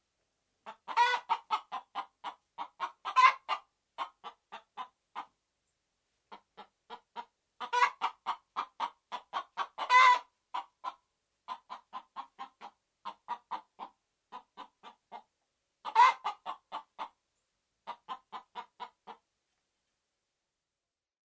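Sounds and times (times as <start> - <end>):
red junglefowl clucking: 0.6 - 5.3, 6.3 - 17.2, 17.8 - 19.2.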